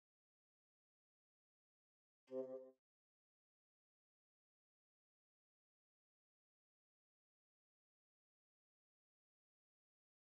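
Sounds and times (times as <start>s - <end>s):
bassoon: 2.3s - 2.7s.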